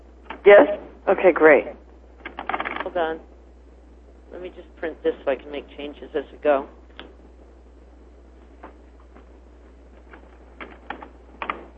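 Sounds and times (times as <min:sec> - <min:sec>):
low steady hum: 0:00.0 - 0:11.7
speech: 0:00.4 - 0:01.8, 0:02.9 - 0:03.3, 0:04.3 - 0:06.8
person typing on keyboard during a meeting: 0:02.2 - 0:02.9, 0:10.0 - 0:11.7.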